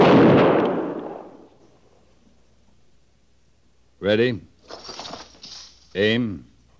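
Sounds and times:
rifle volley from a firing squad: 0.0s - 2.0s
speech: 4.0s - 4.9s, 6.0s - 6.5s.

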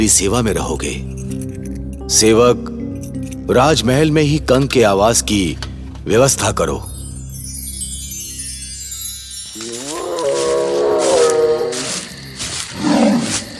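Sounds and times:
speech: 0.0s - 1.2s, 2.1s - 2.8s, 3.5s - 6.9s
lion roar: 9.6s - 12.0s, 12.7s - 13.5s.

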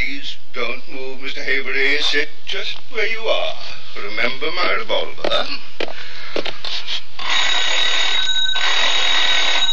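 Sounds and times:
speech: 0.6s - 6.5s
old-fashioned telephone bell ringing the operator: 7.2s - 9.7s.

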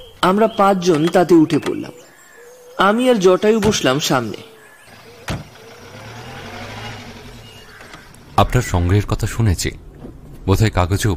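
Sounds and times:
speech: 0.2s - 2.0s, 2.8s - 4.5s, 8.4s - 11.1s
Ambassador car engine rumble while setting off: 4.5s - 11.1s.

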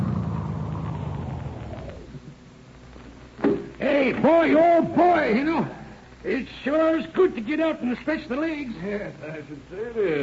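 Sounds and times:
car engine rumbling as the car pulls up and stops: 0.0s - 2.4s
speech: 4.1s - 10.2s.

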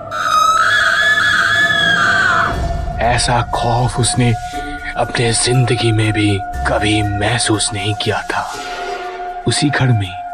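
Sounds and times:
loud sustained high-pitched scream from the next room: 0.0s - 2.6s
speech: 3.0s - 8.7s, 9.5s - 10.2s.

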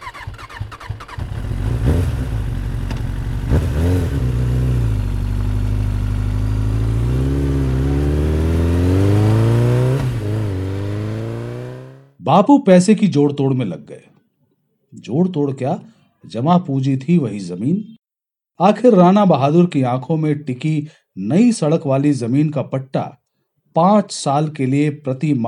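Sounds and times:
motorcycle engine revving and accelerating away: 0.0s - 12.2s
speech: 12.3s - 14.1s, 14.9s - 18.0s, 18.6s - 25.4s.

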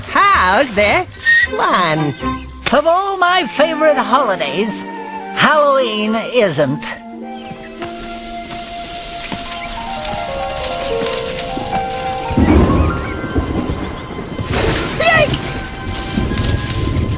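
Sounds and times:
faint tonal music or vocal sounds: 0.0s - 17.1s
speech: 0.4s - 7.0s
steady hissing rain in a thunderstorm: 8.2s - 17.1s
loud rumble of thunder: 9.4s - 17.1s.

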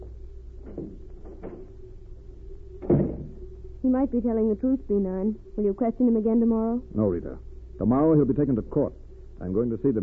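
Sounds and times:
low hum: 0.0s - 10.0s
door creaking and clicking open: 0.6s - 1.8s, 2.8s - 3.5s
speech: 3.9s - 10.0s.

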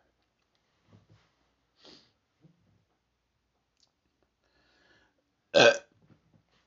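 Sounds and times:
breathy noises: 1.8s - 2.2s, 4.4s - 5.2s
person belching after drinking kombucha: 5.6s - 5.8s.

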